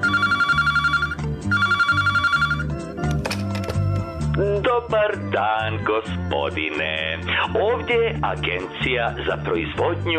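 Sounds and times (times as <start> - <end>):
telephone ringing: 0.0 - 3.9
speech: 4.8 - 10.1.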